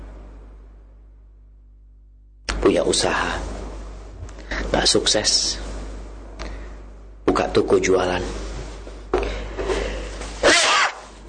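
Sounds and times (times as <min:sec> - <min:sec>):
low hum: 0:00.0 - 0:11.2
speech: 0:02.7 - 0:03.5, 0:04.7 - 0:05.6, 0:07.4 - 0:08.4
person sneezing loudly: 0:10.4 - 0:11.1.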